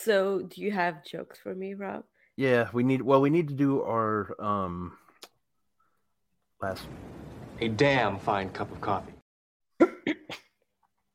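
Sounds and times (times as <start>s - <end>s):
speech: 0.0s - 5.0s, 6.6s - 9.2s
quick coughs: 9.8s - 10.6s.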